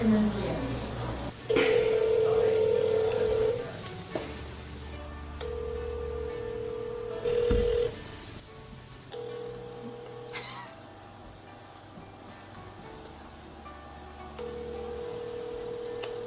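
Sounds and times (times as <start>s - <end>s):
faint hiss: 0.0s - 5.0s, 7.3s - 9.1s
phone ringback tones during a call being placed: 1.5s - 3.7s, 5.4s - 8.0s, 9.2s - 10.3s, 14.4s - 16.2s.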